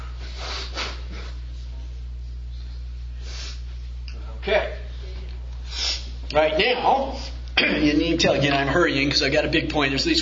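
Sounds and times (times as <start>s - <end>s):
steady low electrical hum: 0.0s - 10.1s
person blowing their nose: 0.2s - 1.4s, 3.2s - 3.7s, 5.7s - 6.1s
speech: 6.3s - 10.1s.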